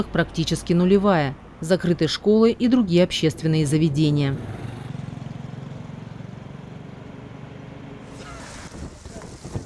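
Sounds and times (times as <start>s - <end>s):
speech: 0.0s - 4.7s
blowing grit hissing in a sandstorm: 8.1s - 9.6s
strong wind roaring in a sandstorm: 8.1s - 9.6s.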